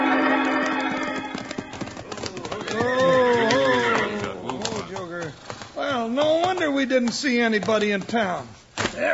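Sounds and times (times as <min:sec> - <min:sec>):
horses clopping to a halt near schoolhouse steps in Springerville: 0:00.2 - 0:09.1
horse whinnying: 0:01.6 - 0:04.3
speech: 0:06.9 - 0:09.1.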